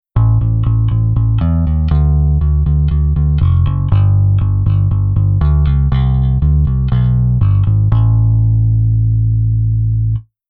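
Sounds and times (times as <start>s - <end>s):
bass velo accent: 0.0s - 10.2s.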